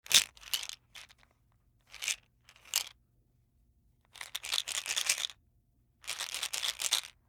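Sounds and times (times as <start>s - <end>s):
plastic pill bottle shaking in a bathroom: 0.1s - 1.3s, 1.9s - 2.9s, 4.1s - 5.4s, 6.0s - 7.2s.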